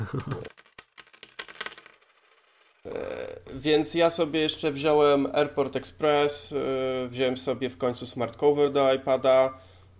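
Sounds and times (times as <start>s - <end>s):
speech: 0.1s - 0.6s, 2.8s - 9.7s
coins clinking and jingling in a cash register style effect: 0.2s - 2.8s.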